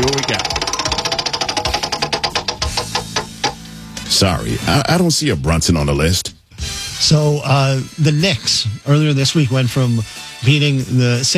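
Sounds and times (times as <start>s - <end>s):
prize wheel spinning: 0.0s - 3.5s
speech: 4.2s - 6.3s, 7.0s - 11.3s.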